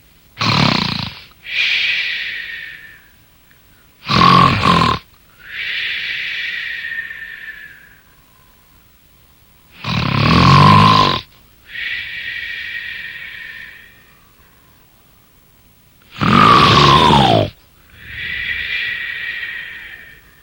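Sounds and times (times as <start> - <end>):
loud snoring with whistling exhales: 0.4 - 1.3, 4.0 - 5.0, 9.8 - 11.3, 16.1 - 20.2.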